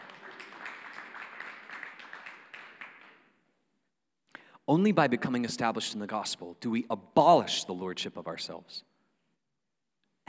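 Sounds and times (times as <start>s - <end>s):
audience applauding: 0.0s - 3.3s
speech: 4.7s - 8.9s.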